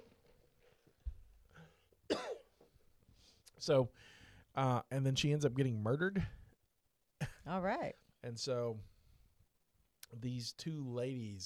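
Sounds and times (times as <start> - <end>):
quiet breathing or throat noise: 0.5 - 2.0, 2.8 - 4.6
person coughing: 2.1 - 2.5
speech: 3.6 - 6.4, 7.4 - 8.9, 10.1 - 11.4.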